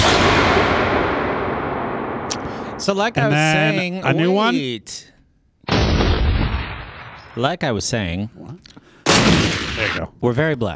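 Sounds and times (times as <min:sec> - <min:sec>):
gunshot sound effect of an old .44 Magnum: 0:00.0 - 0:03.0, 0:05.7 - 0:07.4, 0:09.1 - 0:10.1
speech: 0:02.9 - 0:05.1, 0:07.4 - 0:10.7.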